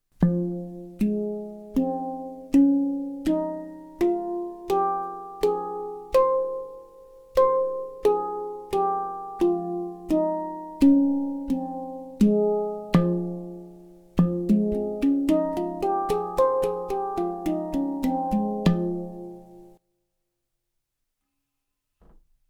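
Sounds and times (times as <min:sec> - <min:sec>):
handpan: 0:00.2 - 0:19.8.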